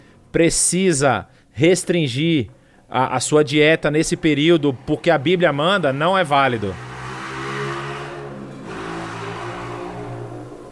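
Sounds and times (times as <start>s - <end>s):
speech: 0.4s - 6.9s
motorcycle engine revving during a test: 3.9s - 10.7s.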